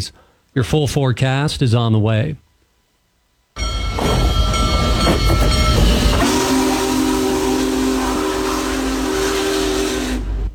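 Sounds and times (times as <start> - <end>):
speech: 0.0 - 2.4
steam locomotive whistle blowing: 3.6 - 10.5
train rolling close by with rumble and hiss: 3.6 - 10.5.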